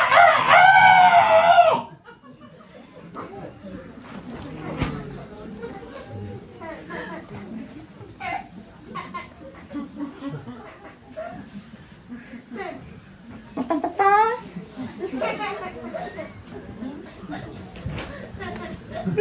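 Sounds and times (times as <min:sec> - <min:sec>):
rooster crowing: 0:00.0 - 0:01.9
faint low murmuring: 0:00.0 - 0:19.1
laughter: 0:01.4 - 0:19.1.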